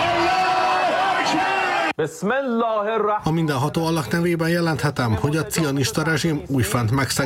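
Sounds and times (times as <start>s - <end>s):
large crowd celebrating in the streets of Tehran cheering and shouting: 0.0s - 2.0s
speech: 1.3s - 7.2s.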